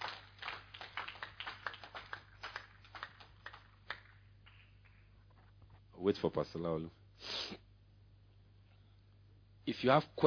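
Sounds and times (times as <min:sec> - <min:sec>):
crowd clapping: 0:00.0 - 0:05.1
steady low electrical hum: 0:00.0 - 0:10.2
speech: 0:06.0 - 0:07.6, 0:09.8 - 0:10.2.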